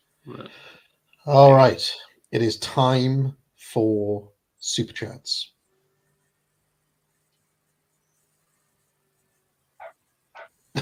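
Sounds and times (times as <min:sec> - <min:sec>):
speech: 0:00.2 - 0:05.6
dog barks: 0:09.8 - 0:10.5.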